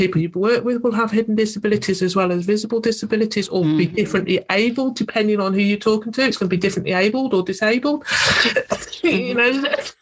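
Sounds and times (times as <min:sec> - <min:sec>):
speech: 0:00.0 - 0:10.0
person choking: 0:03.6 - 0:04.2
person coughing: 0:08.1 - 0:09.0.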